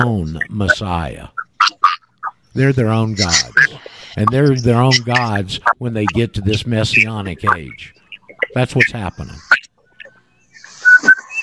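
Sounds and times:
speech: 0.0s - 1.4s, 2.6s - 9.6s
whistled tune: 10.0s - 11.4s.

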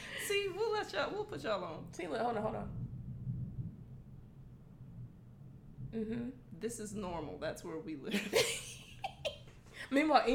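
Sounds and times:
thunder rumbling during a thunderstorm: 0.0s - 8.1s
speech: 0.3s - 2.8s, 5.9s - 8.6s, 9.9s - 10.3s.

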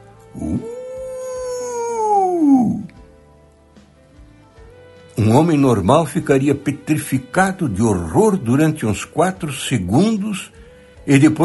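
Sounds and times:
long wavering howl: 0.3s - 3.0s
speech: 5.3s - 11.4s.

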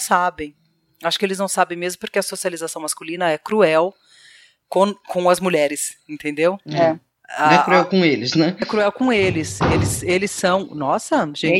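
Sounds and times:
speech: 0.0s - 11.5s
female cat banging violently against a closed door: 9.2s - 10.2s.

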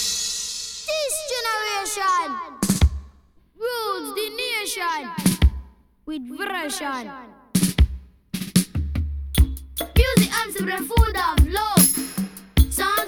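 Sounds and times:
children singing a bright pop-reggae song: 0.9s - 3.0s, 3.6s - 5.7s, 9.8s - 13.0s
speech: 6.1s - 7.4s, 10.4s - 12.0s
sharp percussive hits: 9.4s - 13.0s.

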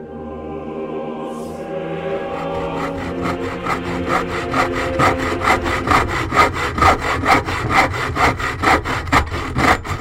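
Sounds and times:
hand saw cutting wood: 2.2s - 9.9s.

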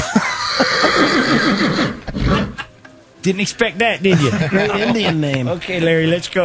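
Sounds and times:
laughter: 0.0s - 1.5s, 4.0s - 5.6s
pony whinnying in a long quavering neigh: 0.0s - 2.7s
pony snorting: 0.4s - 2.7s
speech: 3.2s - 6.4s.

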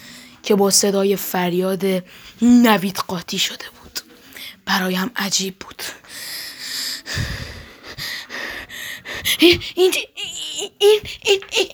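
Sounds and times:
speech: 0.5s - 3.8s, 4.7s - 6.4s, 9.4s - 11.7s
heavy irregular breathing with sharp gasps from behind: 5.9s - 11.6s.

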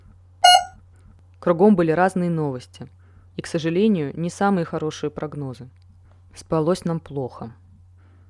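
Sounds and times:
electronic phone notification chimes from messenger apps: 0.4s - 0.7s
speech: 1.4s - 5.8s, 6.3s - 7.6s.

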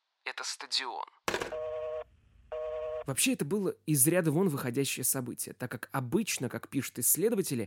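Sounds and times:
speech: 0.4s - 1.7s, 3.1s - 7.6s
telephone receiver being picked up: 1.3s - 1.6s
telephone ringing in a savings bank during a robbery: 1.3s - 3.1s.

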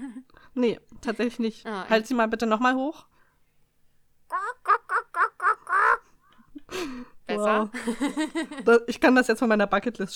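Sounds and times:
speech: 0.6s - 3.1s, 6.7s - 10.1s
woman imitating duck quacks: 4.3s - 6.0s
laughter: 4.3s - 6.9s.

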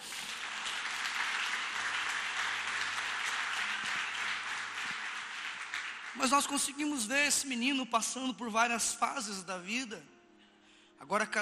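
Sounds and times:
audience applause: 0.0s - 6.8s
speech: 6.2s - 10.1s, 11.0s - 11.3s.

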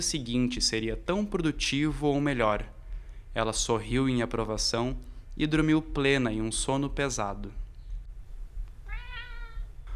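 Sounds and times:
speech: 0.0s - 2.8s, 3.4s - 7.6s
steady low rumble: 0.0s - 9.9s
cat meowing: 8.8s - 9.9s.

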